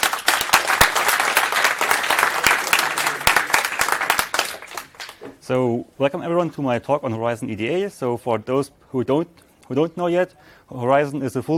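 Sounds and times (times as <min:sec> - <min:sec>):
audience round of applause: 0:00.0 - 0:05.2
speech: 0:05.5 - 0:11.5.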